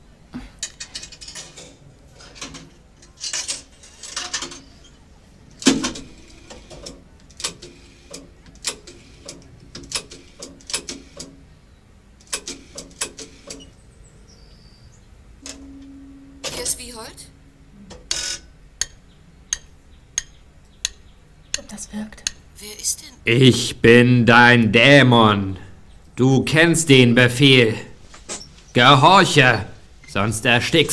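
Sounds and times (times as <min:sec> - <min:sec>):
rotary telephone dial turned and released with ratcheting return: 0:05.6 - 0:11.4, 0:12.2 - 0:13.8
speech: 0:22.9 - 0:25.6, 0:26.2 - 0:27.9, 0:28.8 - 0:30.9.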